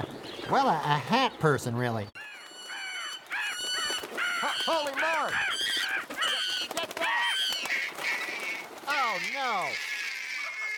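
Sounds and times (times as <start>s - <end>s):
speech: 0.0s - 2.2s, 9.2s - 9.9s
French hens squawking: 2.2s - 10.7s
geese honking: 2.2s - 10.7s.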